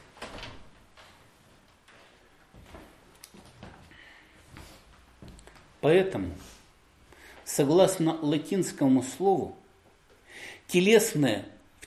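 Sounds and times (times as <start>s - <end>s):
door being opened: 0.0s - 1.2s
speech: 5.8s - 6.5s, 7.5s - 9.6s, 10.4s - 11.8s.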